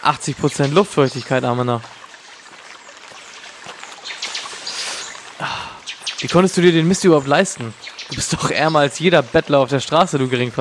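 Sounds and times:
speech: 0.0s - 2.0s, 6.2s - 10.6s
splashy rustles: 0.8s - 9.6s
faint bird chirps: 2.2s - 9.0s
water rushing from a waterfall in a forest in South America: 4.0s - 9.0s.

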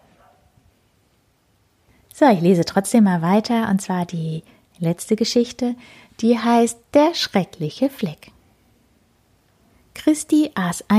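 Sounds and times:
dog barking: 0.0s - 0.6s
hiss: 0.0s - 10.9s
speech: 2.2s - 8.4s, 10.0s - 10.9s.

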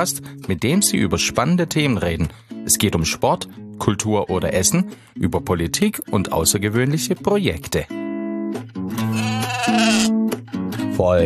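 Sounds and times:
speech: 0.0s - 9.0s, 11.0s - 11.2s
sheep bleating: 9.0s - 10.2s.

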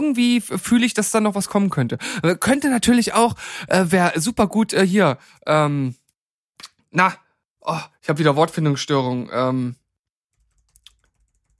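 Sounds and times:
speech: 0.0s - 6.0s, 6.9s - 9.8s
computer keyboard typing: 10.3s - 11.5s.

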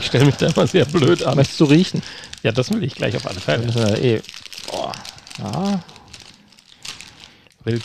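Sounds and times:
crinkly plastic snack bag being pulled open: 0.0s - 7.8s
speech: 0.1s - 5.9s, 7.6s - 7.8s
person exclaiming: 4.7s - 5.9s.

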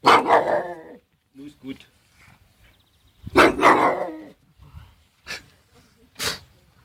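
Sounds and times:
small dog barking high-pitched: 0.0s - 1.0s, 3.3s - 4.4s
speech: 1.6s - 1.9s.

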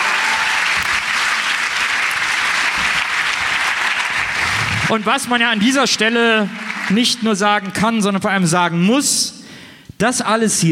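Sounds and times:
audience applause: 0.0s - 7.8s
speech: 4.9s - 9.4s, 10.0s - 10.7s.

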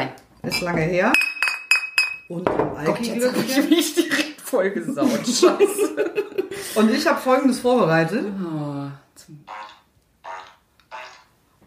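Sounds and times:
speech: 0.0s - 1.3s, 2.3s - 9.6s
laughter: 5.0s - 6.6s
toy fart piano played at a kitchen table: 9.4s - 11.4s.

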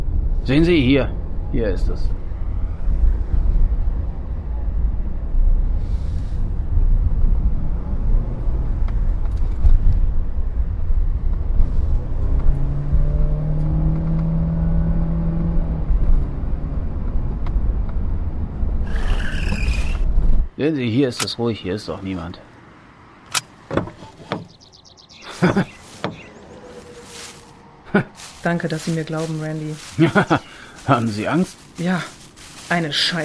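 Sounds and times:
car engine rumble driving into the woods: 0.0s - 33.2s
speech: 0.4s - 2.3s, 20.6s - 22.5s, 25.4s - 25.7s, 28.4s - 33.2s
laughter: 25.2s - 25.8s, 30.0s - 30.6s.

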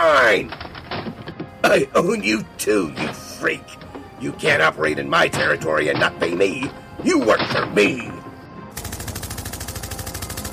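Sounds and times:
speech: 0.3s - 0.6s, 1.7s - 8.2s
machine gun fire in a street confrontation: 8.8s - 10.5s.

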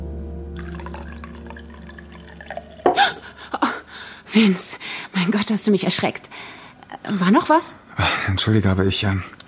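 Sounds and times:
water pouring into a glass: 0.5s - 3.6s
speech: 4.4s - 9.4s.

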